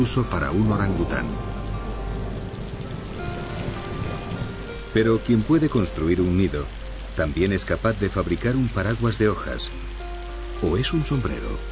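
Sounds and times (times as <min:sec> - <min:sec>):
speech: 0:00.0 - 0:01.6, 0:04.9 - 0:09.9, 0:10.6 - 0:11.6
heavy monsoon rain in a Borneo forest: 0:00.0 - 0:11.6.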